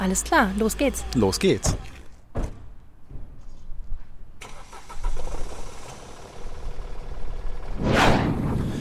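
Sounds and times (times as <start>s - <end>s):
speech: 0.0s - 1.9s
car door thudding: 1.7s - 3.4s
car engine cranking, idling and revving as the car pulls away: 4.4s - 8.8s.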